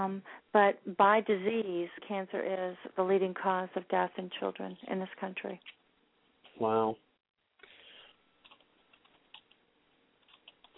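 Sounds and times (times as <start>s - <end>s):
speech: 0.0s - 5.8s, 6.6s - 7.0s
typing on a computer keyboard in an online chat: 8.4s - 9.6s, 10.2s - 10.7s.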